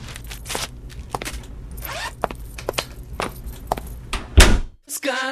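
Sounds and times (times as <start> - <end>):
rustling, shuffling movement: 0.0 - 4.1
loud door slam: 4.4 - 4.8.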